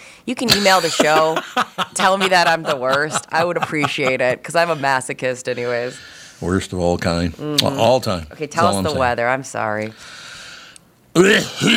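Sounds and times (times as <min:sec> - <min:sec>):
speech: 0:00.2 - 0:10.2, 0:11.2 - 0:11.7
person coughing and clearing throat: 0:00.4 - 0:01.4, 0:11.2 - 0:11.7
laughter: 0:00.5 - 0:05.0
faint breathy hiss: 0:05.5 - 0:06.6, 0:09.8 - 0:10.9.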